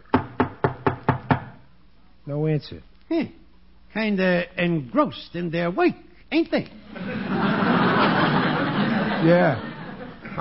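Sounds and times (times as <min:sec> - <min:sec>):
firm knocking on a door: 0:00.1 - 0:01.6
speech: 0:02.3 - 0:07.6, 0:09.2 - 0:09.7
laughter: 0:06.8 - 0:10.3.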